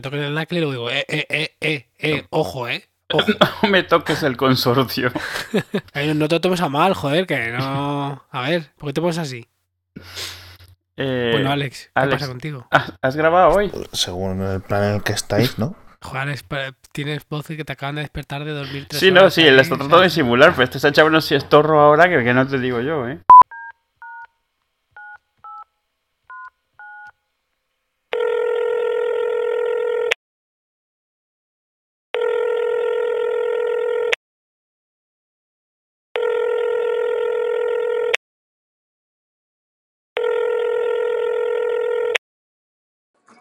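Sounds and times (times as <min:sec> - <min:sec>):
speech: 0:00.0 - 0:10.4, 0:11.0 - 0:23.3
laughter: 0:03.1 - 0:04.4, 0:05.0 - 0:06.2
phone ringback tones: 0:28.1 - 0:30.2, 0:32.2 - 0:34.2, 0:36.2 - 0:38.2, 0:40.2 - 0:42.2.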